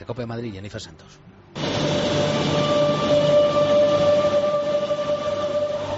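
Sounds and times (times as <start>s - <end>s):
speech: 0.0s - 3.3s
high metallic whine of a metro train: 1.6s - 5.9s
metro train rumbling in an underground station in Madrid: 1.6s - 5.9s.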